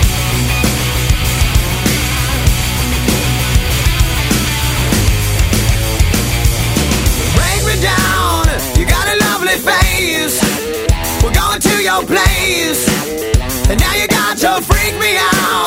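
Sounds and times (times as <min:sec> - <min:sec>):
loud rock song with heavy bass and driving drum beat: 0:00.0 - 0:15.6
person singing over the band: 0:07.3 - 0:15.6.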